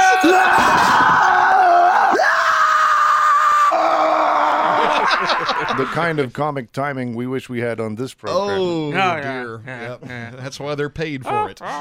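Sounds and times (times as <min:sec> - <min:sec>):
person giving a horrible shriek: 0:00.0 - 0:05.1
laughter: 0:04.5 - 0:06.3
speech: 0:05.8 - 0:11.7.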